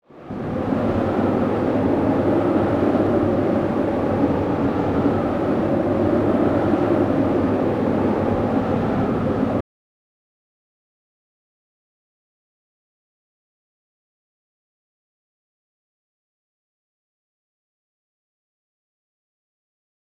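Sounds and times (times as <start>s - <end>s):
strong wind: 0.0s - 9.6s.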